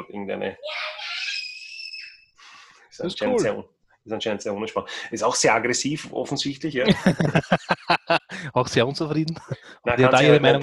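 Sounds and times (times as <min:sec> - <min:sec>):
speech: 0:00.1 - 0:00.8, 0:03.0 - 0:10.6
young child screaming in a high piercing wail: 0:00.6 - 0:02.2
laughter: 0:03.0 - 0:03.5, 0:06.8 - 0:10.6.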